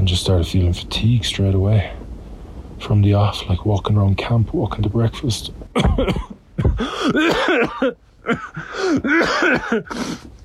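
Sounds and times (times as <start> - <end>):
speech: 0.0 - 2.0, 2.8 - 10.4
person with a Khumbu cough coughing at camp: 5.7 - 10.2.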